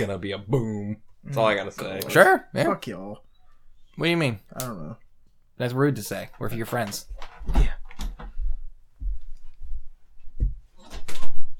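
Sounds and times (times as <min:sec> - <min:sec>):
speech: 0:00.0 - 0:03.3, 0:04.0 - 0:05.0, 0:05.6 - 0:07.8
door rattling and scraping as it closes: 0:06.4 - 0:08.4
door dull low thumps: 0:07.0 - 0:08.4.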